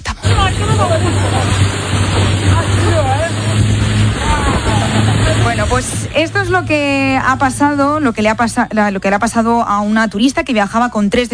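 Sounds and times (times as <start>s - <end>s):
wind noise: 0.0s - 8.7s
indistinct voices: 0.0s - 10.7s
water noise: 0.0s - 11.3s
small motorboat engine accelerating on water: 0.1s - 10.8s
speech: 5.7s - 11.3s.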